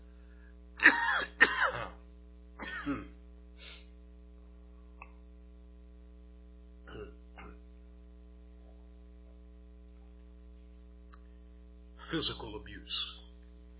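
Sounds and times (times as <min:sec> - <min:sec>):
low steady mains hum: 0:00.0 - 0:13.7
person clearing a tickle from their throat: 0:00.8 - 0:02.0, 0:02.6 - 0:03.8, 0:06.8 - 0:07.7
speech: 0:12.2 - 0:13.2.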